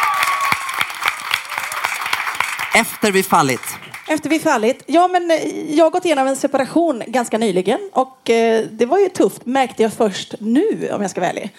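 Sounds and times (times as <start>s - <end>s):
audience applauding: 0.0s - 4.5s
speech: 2.8s - 11.5s.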